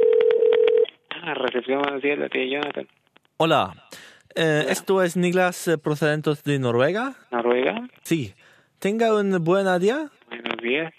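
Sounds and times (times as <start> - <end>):
telephone keypad tones dialing an international call: 0.0 - 0.8
speech: 1.3 - 3.8, 4.4 - 10.9.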